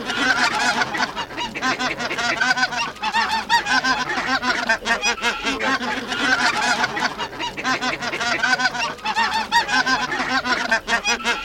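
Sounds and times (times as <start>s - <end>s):
Greater white-fronted goose flock calling with high yelping honks: 0.0s - 11.4s.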